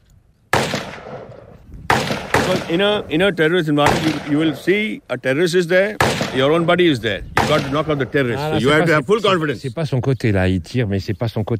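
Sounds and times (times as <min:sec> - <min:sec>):
gunshot fired at a pinpoint head target during counter-terrorism shooting training: 0:00.5 - 0:03.0, 0:03.8 - 0:04.7, 0:06.0 - 0:06.6, 0:07.4 - 0:08.0
speech: 0:02.5 - 0:11.5.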